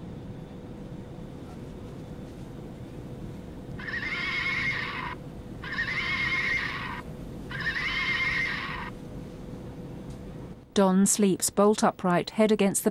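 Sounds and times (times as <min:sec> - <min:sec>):
toy pony neighing aboard a plane: 0:03.8 - 0:08.9
speech: 0:10.8 - 0:12.8.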